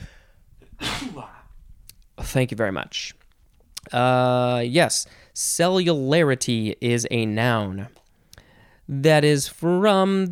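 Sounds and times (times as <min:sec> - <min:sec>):
sneeze: 0:00.8 - 0:01.4
speech: 0:02.3 - 0:03.2, 0:03.9 - 0:08.0, 0:08.9 - 0:10.2.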